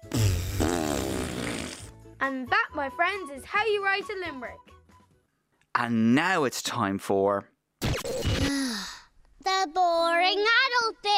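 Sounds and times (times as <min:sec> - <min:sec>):
long loud fart: 0:00.0 - 0:01.9
speech: 0:02.2 - 0:04.8, 0:05.8 - 0:07.5, 0:09.4 - 0:11.1.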